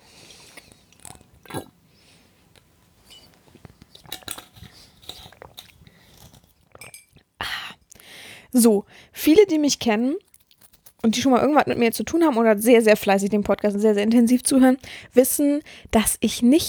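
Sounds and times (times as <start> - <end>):
wet mouth clicks: 0.4 - 1.8, 3.5 - 8.0
person gulping and swallowing while drinking from a bottle: 0.4 - 1.9, 3.4 - 8.0
speech: 8.6 - 10.2, 11.0 - 16.6.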